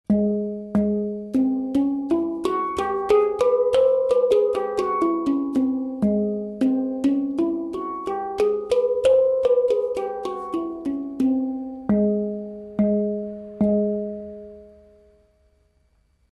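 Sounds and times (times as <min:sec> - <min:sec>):
hang drum playing Purvi: 0:00.1 - 0:14.6.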